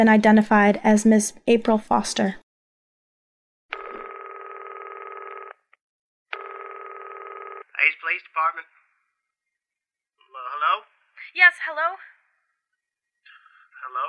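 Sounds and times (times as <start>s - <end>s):
speech: 0.0s - 2.4s, 11.3s - 12.1s
telephone ringback tones in a recorded phone call to a police department: 3.7s - 5.7s, 6.4s - 7.6s.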